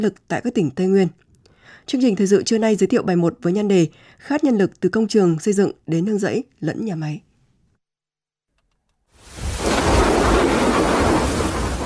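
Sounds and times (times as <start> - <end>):
speech: 0.0 - 7.3
rain hiss: 9.2 - 11.8
rolling thunder in an early rainy-season thunderstorm in a border region: 9.3 - 11.8.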